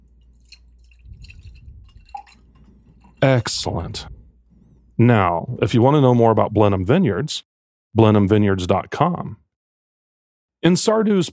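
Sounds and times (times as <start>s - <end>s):
glass ringing: 0.0s - 4.9s
white wine pouring into a glass: 0.0s - 5.0s
speech: 3.2s - 4.2s, 5.0s - 9.4s, 10.6s - 11.3s.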